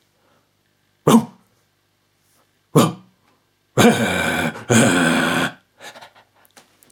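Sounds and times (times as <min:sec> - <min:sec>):
person imitating a barking dog: 0:01.0 - 0:01.4, 0:02.7 - 0:03.1, 0:03.8 - 0:05.6
faint breathy sounds: 0:03.8 - 0:06.2.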